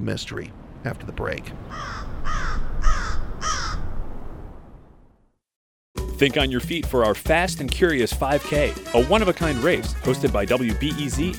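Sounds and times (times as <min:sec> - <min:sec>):
speech: 0:00.0 - 0:02.5, 0:06.2 - 0:11.3
crows cawing in Chicago: 0:01.7 - 0:03.9.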